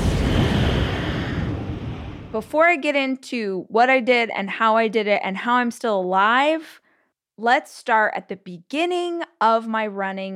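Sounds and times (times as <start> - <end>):
deep explosion sound effect: 0.0 - 2.6
speech: 2.3 - 6.8, 7.4 - 10.3.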